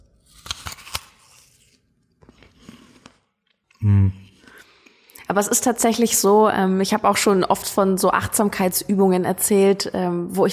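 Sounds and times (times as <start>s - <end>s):
biting into an apple: 0.0s - 3.9s
speech: 5.4s - 10.5s.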